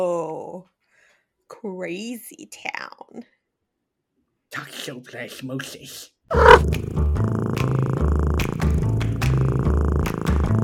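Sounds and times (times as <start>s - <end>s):
speech: 1.6s - 3.4s, 4.5s - 7.1s
cat purring: 6.3s - 10.6s.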